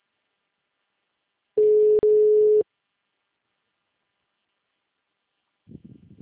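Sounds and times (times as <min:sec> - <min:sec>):
ringback tone of an outgoing telephone call: 0:01.6 - 0:02.6.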